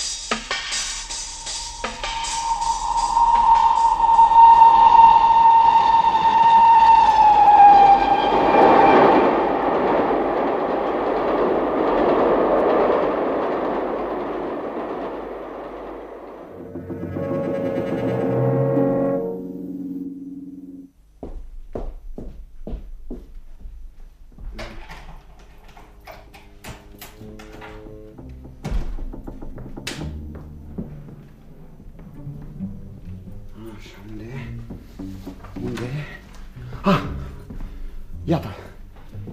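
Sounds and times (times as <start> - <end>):
train rumbling on rails: 0.0 - 20.8, 24.1 - 39.3
train whistle: 0.8 - 9.8, 16.5 - 20.9.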